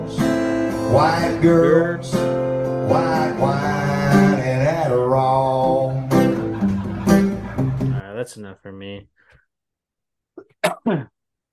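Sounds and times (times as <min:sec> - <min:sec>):
speech: 0:00.9 - 0:02.3, 0:02.9 - 0:06.0, 0:08.2 - 0:09.1, 0:10.8 - 0:11.1
laughter: 0:06.0 - 0:08.0
stifled cough with a strained rasp: 0:10.4 - 0:11.1.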